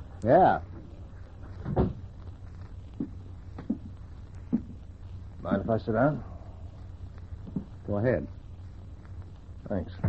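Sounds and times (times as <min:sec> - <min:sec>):
speech: 0:00.2 - 0:00.7, 0:05.5 - 0:06.3, 0:07.9 - 0:08.4, 0:09.7 - 0:10.0
door shutting with a thud: 0:01.6 - 0:02.0.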